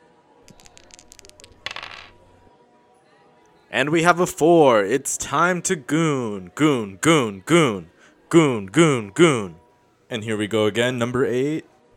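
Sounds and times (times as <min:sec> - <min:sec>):
dice being rolled, rattling and clattering: 0:00.5 - 0:02.4
speech: 0:03.7 - 0:11.7.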